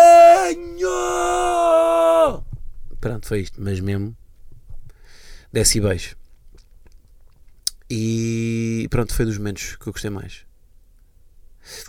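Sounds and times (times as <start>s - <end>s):
man yelling a shocked cry at a bad shower: 0.0s - 2.4s
speech: 3.2s - 4.2s, 5.5s - 6.2s, 7.9s - 10.5s, 11.6s - 11.8s.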